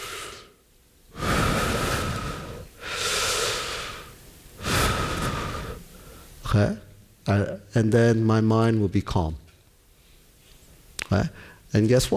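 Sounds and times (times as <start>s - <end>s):
slow deep breathing: 0.0s - 6.4s, 11.3s - 11.7s
speech: 6.6s - 9.4s, 11.1s - 12.1s.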